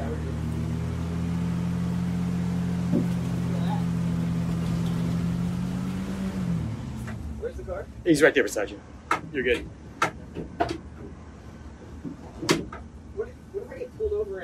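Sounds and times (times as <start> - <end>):
car engine rumbling with low droning hum: 0.0 - 14.4
speech: 7.6 - 9.8.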